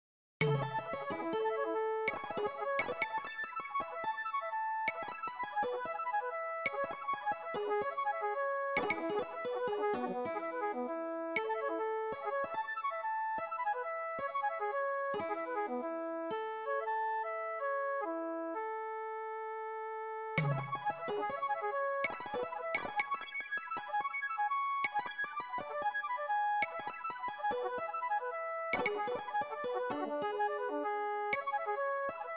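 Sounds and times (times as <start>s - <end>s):
non-melodic percussion: 0.4s - 3.2s, 20.4s - 21.4s
flute: 0.4s - 32.3s.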